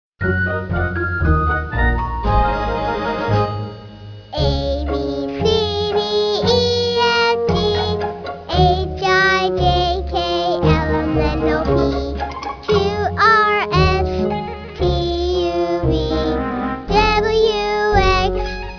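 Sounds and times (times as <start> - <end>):
song: 0.2 - 18.7.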